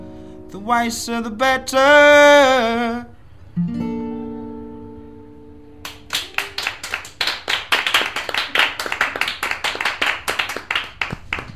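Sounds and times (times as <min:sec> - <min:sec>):
speech: 0:00.7 - 0:03.1
studio audience applause: 0:05.8 - 0:11.5.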